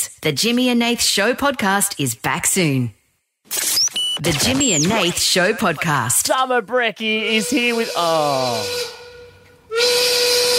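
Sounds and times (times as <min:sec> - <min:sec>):
speech: 0:00.2 - 0:09.0
quitting-time steam whistle blasting: 0:07.2 - 0:10.5.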